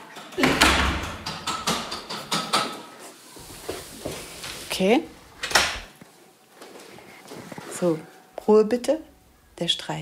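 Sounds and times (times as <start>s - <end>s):
door clunking and rattling in its frame: 0.2s - 2.8s
door pushed shut with a heavy thud: 0.4s - 1.9s
speech: 4.8s - 5.2s, 7.8s - 9.9s.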